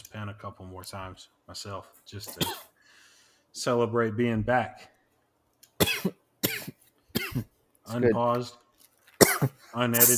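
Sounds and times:
speech: 0:00.2 - 0:02.7, 0:03.6 - 0:04.9, 0:07.4 - 0:08.6, 0:09.4 - 0:10.1
harsh coughs: 0:02.3 - 0:02.8, 0:05.8 - 0:07.5, 0:09.2 - 0:10.1.

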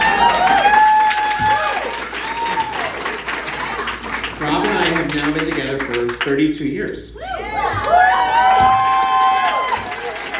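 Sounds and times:
audience cheering with whoops and shouts: 0:00.0 - 0:05.1, 0:07.2 - 0:10.3
scattered audience clapping: 0:00.0 - 0:06.4, 0:08.9 - 0:10.3
speech: 0:06.3 - 0:08.0.

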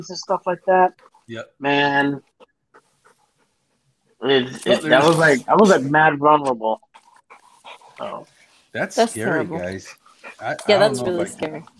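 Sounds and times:
speech: 0:00.0 - 0:02.4, 0:04.2 - 0:06.9, 0:08.0 - 0:11.7
faint dog panting in a room: 0:00.8 - 0:01.4, 0:02.2 - 0:05.8, 0:06.9 - 0:11.7.

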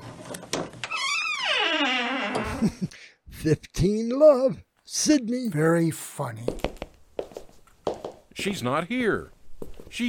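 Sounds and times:
door swinging open with a long creak: 0:00.4 - 0:02.7
speech: 0:02.6 - 0:06.7, 0:08.4 - 0:10.0.

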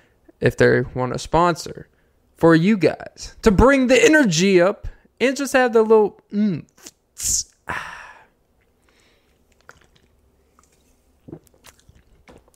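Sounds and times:
speech: 0:00.4 - 0:08.0
faint mouth clicks: 0:08.6 - 0:12.5
person sipping and gulping a drink: 0:08.6 - 0:12.5
small swallows: 0:08.6 - 0:12.5.

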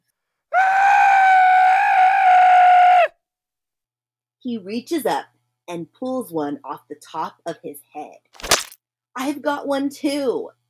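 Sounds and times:
man screaming loudly in a cave: 0:00.6 - 0:03.1
speech: 0:04.4 - 0:08.4, 0:09.2 - 0:10.6.

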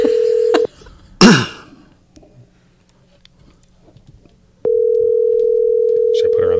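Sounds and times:
phone line electronic ringback tone: 0:00.0 - 0:00.7, 0:04.6 - 0:06.5
laughter: 0:00.0 - 0:01.0
person coughing: 0:01.2 - 0:01.8
speech: 0:01.3 - 0:01.5.

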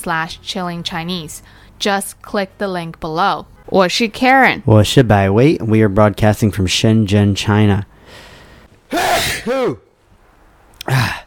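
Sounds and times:
speech: 0:00.0 - 0:08.2, 0:08.9 - 0:09.8, 0:10.9 - 0:11.2
person sneezing loudly: 0:08.9 - 0:09.9, 0:10.8 - 0:11.2.

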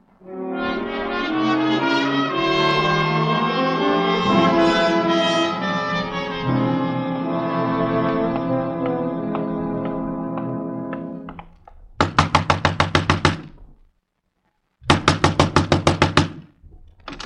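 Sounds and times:
sustained humming tone: 0:00.0 - 0:11.4
loud rapid pounding on a door: 0:12.0 - 0:13.5, 0:14.8 - 0:16.4.

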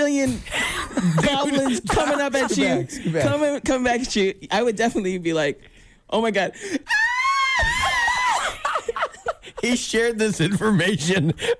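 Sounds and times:
speech: 0:00.1 - 0:07.0, 0:09.6 - 0:11.5
laughter: 0:00.5 - 0:03.6, 0:07.6 - 0:11.5
person screaming a theatrical scream of mock terror: 0:06.9 - 0:08.6.

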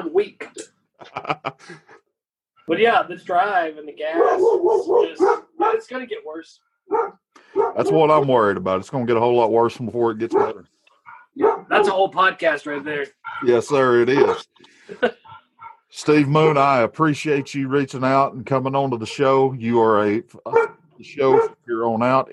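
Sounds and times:
laughter: 0:01.0 - 0:02.1, 0:13.9 - 0:15.4
speech: 0:02.7 - 0:10.7, 0:11.4 - 0:15.2, 0:15.9 - 0:22.3
dogs barking: 0:04.0 - 0:06.0, 0:06.9 - 0:08.3, 0:10.2 - 0:12.1, 0:13.2 - 0:14.5, 0:15.2 - 0:16.0, 0:20.4 - 0:21.6.

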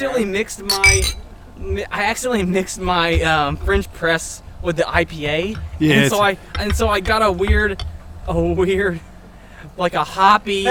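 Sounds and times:
speech: 0:00.0 - 0:09.1, 0:09.8 - 0:10.6
glasses clinking in a toast: 0:00.7 - 0:01.4.

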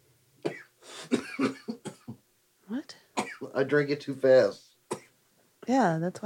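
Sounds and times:
person coughing: 0:00.4 - 0:02.2, 0:03.2 - 0:03.5
rough wheezing: 0:00.6 - 0:01.4
speech: 0:03.6 - 0:04.7, 0:05.7 - 0:06.2.

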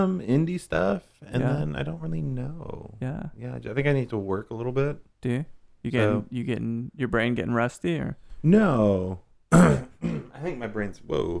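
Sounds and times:
speech: 0:00.0 - 0:11.3
voiced sounds from the same person: 0:00.0 - 0:11.3
loud cough into the microphone: 0:09.5 - 0:10.5.

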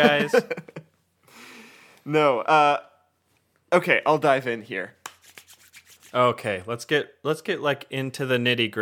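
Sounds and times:
speech: 0:00.0 - 0:00.6, 0:02.1 - 0:02.9, 0:03.7 - 0:05.0, 0:06.1 - 0:08.8
laughter: 0:00.0 - 0:00.9
palms rubbing together: 0:05.0 - 0:06.2.

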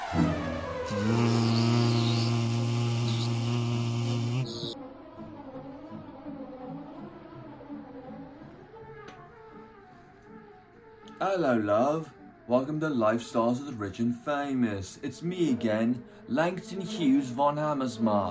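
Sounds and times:
person mimicking an insect with a loud nasal buzz: 0:00.9 - 0:04.8
speech: 0:11.2 - 0:18.3.

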